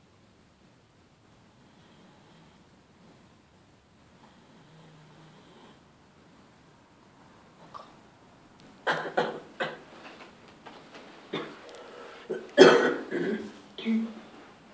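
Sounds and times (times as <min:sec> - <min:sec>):
person coughing: 0:08.9 - 0:09.8, 0:11.4 - 0:11.6, 0:12.3 - 0:14.2
short throat clearing: 0:11.4 - 0:11.6, 0:12.3 - 0:14.1.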